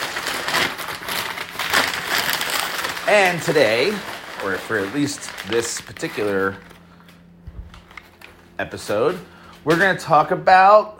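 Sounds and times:
sheet of paper torn off a pad: 0:00.0 - 0:06.8
speech: 0:03.1 - 0:06.7, 0:08.6 - 0:10.9.

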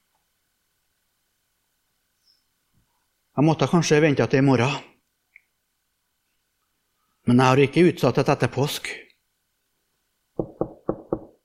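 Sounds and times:
speech: 0:03.4 - 0:04.9, 0:07.3 - 0:09.0
firm knocks on a door: 0:10.4 - 0:11.4.

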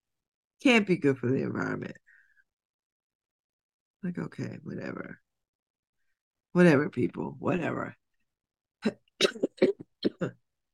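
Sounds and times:
speech: 0:00.6 - 0:02.0, 0:04.0 - 0:05.2, 0:06.6 - 0:08.0, 0:08.8 - 0:09.4, 0:10.2 - 0:10.4
short dry coughs: 0:09.2 - 0:10.3.

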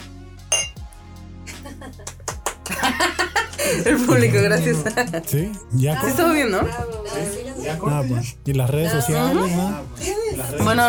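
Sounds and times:
glass set down with a soft knock: 0:00.5 - 0:00.8
glasses clinking in a toast: 0:00.5 - 0:00.8
laughter: 0:01.5 - 0:05.4
speech: 0:03.8 - 0:10.8.

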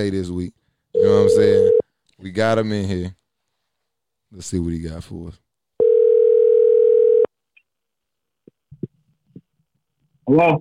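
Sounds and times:
speech: 0:00.0 - 0:03.2, 0:04.3 - 0:05.4, 0:10.3 - 0:10.5
telephone dial tone of outgoing call: 0:05.8 - 0:07.3.

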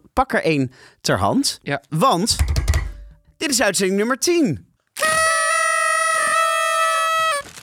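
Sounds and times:
speech: 0:00.2 - 0:02.6, 0:03.4 - 0:04.7
party blower loud buzzy steady-pitched honk: 0:05.0 - 0:07.4.

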